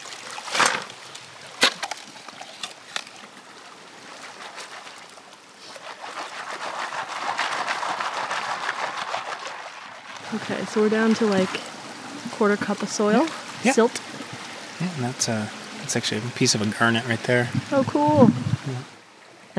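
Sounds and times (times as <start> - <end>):
shovel scraping and crunching into wet gravel in a riverbed: 0.0 - 1.0, 4.2 - 9.9
steady rush of flowing river water: 0.0 - 19.5
speech: 10.3 - 11.7, 12.4 - 14.1, 14.8 - 19.0.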